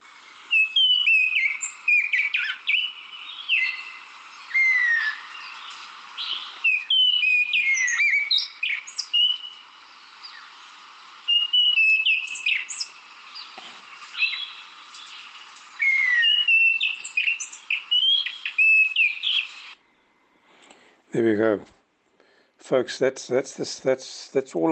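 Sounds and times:
orange ground thrush singing whistled phrases: 0:00.4 - 0:19.8
speech: 0:21.2 - 0:21.8, 0:22.7 - 0:24.7.

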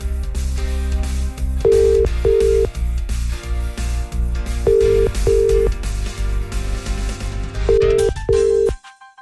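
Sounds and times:
steady music bed: 0:00.0 - 0:09.1
paired phone ringback tones of an unanswered radio wake-up call: 0:01.6 - 0:02.7, 0:04.7 - 0:05.7, 0:07.7 - 0:08.8.

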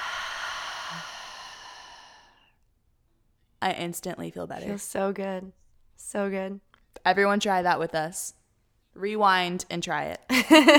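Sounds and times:
deep exhale through an open mouth: 0:00.0 - 0:02.5
speech: 0:00.9 - 0:01.2, 0:03.6 - 0:08.4, 0:09.0 - 0:10.7.

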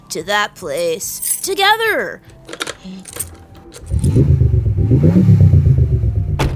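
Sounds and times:
speech: 0:00.1 - 0:03.2, 0:04.2 - 0:05.4
quick metallic clinks: 0:00.8 - 0:01.6, 0:03.0 - 0:04.2
hover car engine starting and revving loudly: 0:03.8 - 0:06.5.

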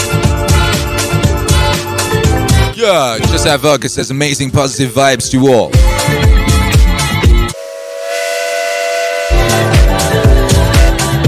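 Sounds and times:
upbeat music: 0:00.0 - 0:11.2
speech: 0:02.8 - 0:06.3
steam train whistle: 0:07.4 - 0:11.2.

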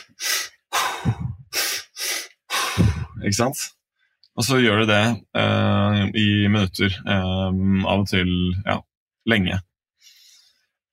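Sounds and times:
person hyperventilating with rapid forceful breaths through the mouth: 0:00.0 - 0:03.2, 0:10.0 - 0:10.7
speech: 0:01.0 - 0:01.3, 0:02.8 - 0:03.8, 0:04.4 - 0:09.7.

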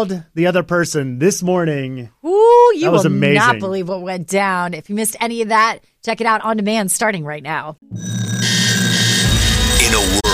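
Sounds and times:
speech: 0:00.0 - 0:08.4
alarm clock ringing with a buzzing electronic tone: 0:08.0 - 0:09.9.

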